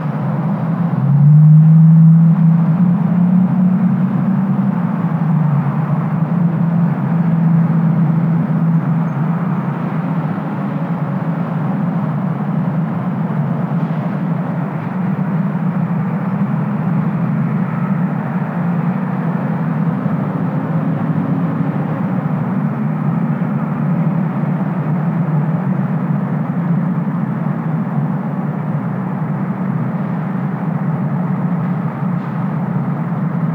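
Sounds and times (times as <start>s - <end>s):
light city ambience: 0.0s - 33.5s.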